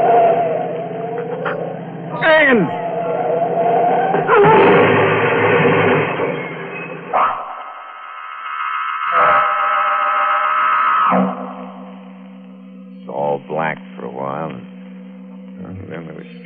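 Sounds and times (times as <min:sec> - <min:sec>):
steady droning blare: 0:00.0 - 0:16.4
speech: 0:02.4 - 0:02.8
car crashing into a tree: 0:04.2 - 0:07.0.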